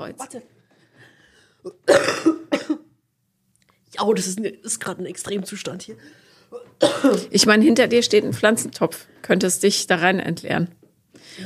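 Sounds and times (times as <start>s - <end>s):
speech: 0.0s - 0.6s, 4.0s - 11.4s
person coughing: 1.6s - 3.0s, 6.5s - 7.3s.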